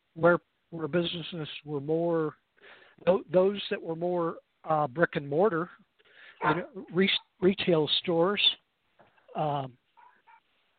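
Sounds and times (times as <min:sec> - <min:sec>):
speech: 0:00.2 - 0:05.8, 0:06.4 - 0:08.6, 0:09.3 - 0:09.8
dog barking indoors: 0:06.4 - 0:07.0, 0:10.0 - 0:10.5.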